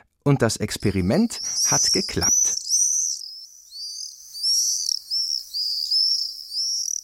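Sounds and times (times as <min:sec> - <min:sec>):
speech: 0:00.2 - 0:02.6
common swifts screaming under a house's roof gutter: 0:00.8 - 0:07.0.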